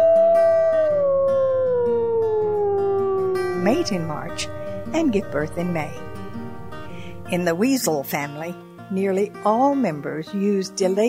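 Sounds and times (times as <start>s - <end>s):
timber wolf howling: 0.0s - 7.4s
speech: 3.6s - 6.1s, 7.3s - 11.0s.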